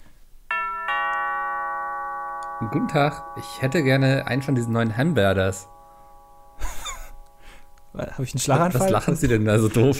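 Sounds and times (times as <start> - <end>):
doorbell two-tone ding-dong chime: 0.5 - 8.8
speech: 2.6 - 5.7, 8.0 - 9.9
laughter: 6.6 - 7.2.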